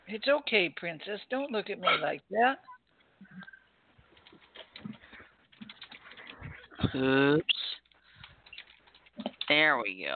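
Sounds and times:
speech: 0:00.1 - 0:02.7, 0:06.9 - 0:07.8, 0:09.5 - 0:10.1
faint typing on a computer keyboard: 0:04.2 - 0:06.8, 0:07.8 - 0:09.7.

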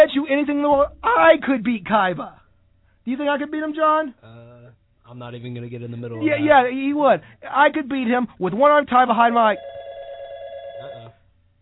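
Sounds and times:
speech: 0:00.2 - 0:02.4, 0:03.1 - 0:09.9
old telephone bell ringing: 0:09.5 - 0:11.3.

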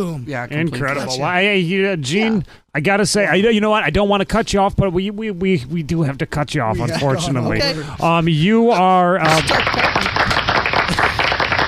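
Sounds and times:
speech: 0:00.0 - 0:10.4
audience clapping: 0:09.2 - 0:11.6.

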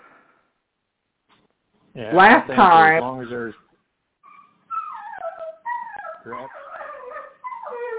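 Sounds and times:
speech: 0:02.0 - 0:03.6, 0:06.2 - 0:06.6
dog whimpering: 0:04.2 - 0:07.9.

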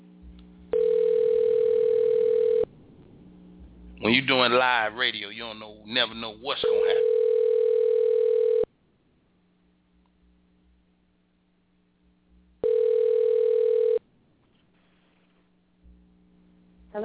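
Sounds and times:
faint low hum: 0:00.0 - 0:17.0
telephone dial tone: 0:00.7 - 0:02.7, 0:06.9 - 0:08.7, 0:12.6 - 0:14.0
speech: 0:04.0 - 0:07.2.

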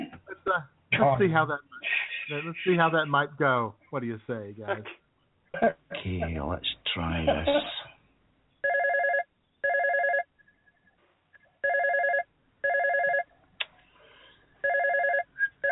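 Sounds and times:
faint noise: 0:00.0 - 0:15.6
speech: 0:00.6 - 0:01.7, 0:02.3 - 0:05.0, 0:05.6 - 0:07.8
telephone ringing in short electronic bursts: 0:08.6 - 0:10.3, 0:11.6 - 0:13.3, 0:14.6 - 0:15.6.

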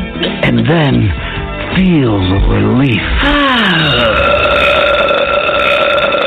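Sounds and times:
speech: 0:00.5 - 0:04.6
long loud burp after gulping soda: 0:03.2 - 0:06.2.

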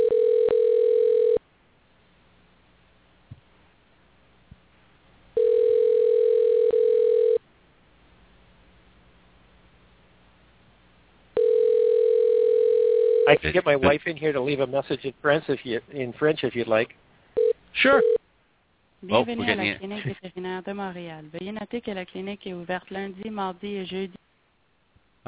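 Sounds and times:
ringing tone on a telephone line as a call is placed: 0:00.0 - 0:01.4, 0:05.4 - 0:07.4, 0:11.4 - 0:13.3, 0:17.4 - 0:18.2
speech: 0:13.5 - 0:17.0, 0:17.7 - 0:18.2, 0:19.0 - 0:24.2.

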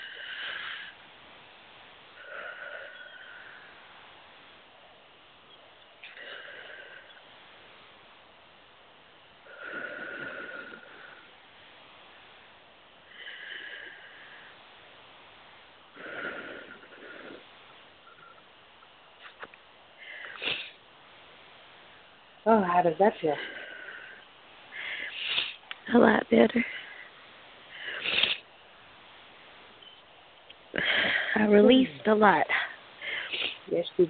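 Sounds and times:
slow deep breaths during a guided relaxation session: 0:00.0 - 0:01.0, 0:02.1 - 0:04.2, 0:06.0 - 0:07.6, 0:09.4 - 0:12.4, 0:13.0 - 0:18.5, 0:20.0 - 0:20.9, 0:23.3 - 0:25.7, 0:26.6 - 0:28.6, 0:30.7 - 0:31.6, 0:32.5 - 0:33.7
speech: 0:22.4 - 0:23.6, 0:26.3 - 0:26.8, 0:31.5 - 0:32.5, 0:33.7 - 0:34.0.

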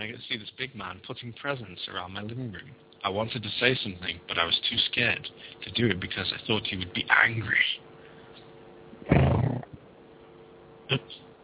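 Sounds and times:
speech: 0:00.8 - 0:07.9
lion roaring: 0:09.0 - 0:09.8
lion grunt: 0:09.1 - 0:09.8.

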